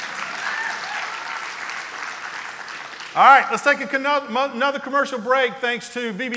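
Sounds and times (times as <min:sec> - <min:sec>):
audience applause: 0:00.0 - 0:04.0
speech: 0:03.1 - 0:06.3.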